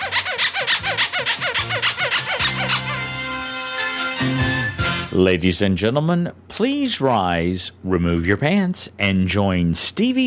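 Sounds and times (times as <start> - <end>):
squeaky rubber duck toy squeezed and squeaking: 0.0 - 3.2
speech: 4.2 - 4.5, 5.2 - 10.2.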